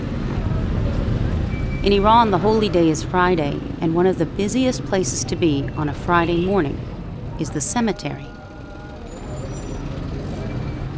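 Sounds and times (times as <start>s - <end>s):
traffic jam of trucks and buses idling outside a cemetery in Iran: 0.0s - 10.9s
speech: 1.8s - 8.4s.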